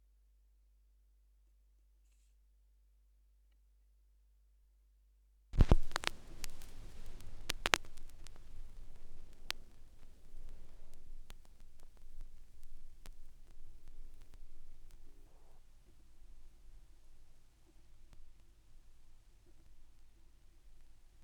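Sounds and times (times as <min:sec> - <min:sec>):
vinyl record noise: 0:05.6 - 0:21.2.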